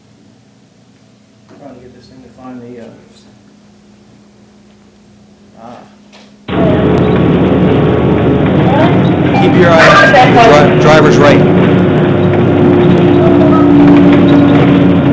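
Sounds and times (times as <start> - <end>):
speech: 1.6 - 3.5, 5.6 - 6.0, 10.4 - 11.5
bus approaching an intersection at about 30 miles an hour: 6.5 - 15.1.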